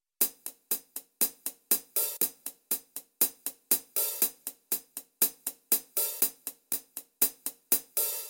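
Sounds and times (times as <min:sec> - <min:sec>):
drum kit hi-hat: 0:00.2 - 0:08.2.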